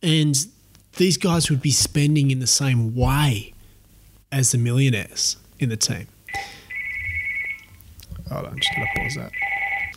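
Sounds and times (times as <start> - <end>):
speech: 0.0 - 3.5, 4.3 - 6.6, 8.3 - 9.5
phone ringing with a bright electronic tone: 6.3 - 7.8, 8.6 - 9.9.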